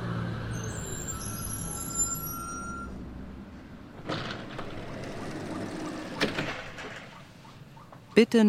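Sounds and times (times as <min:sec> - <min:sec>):
bus engine rumble at a bus stop: 0:00.0 - 0:08.4
bus brakes squealing: 0:00.4 - 0:03.1, 0:04.1 - 0:08.2
speech: 0:08.2 - 0:08.4.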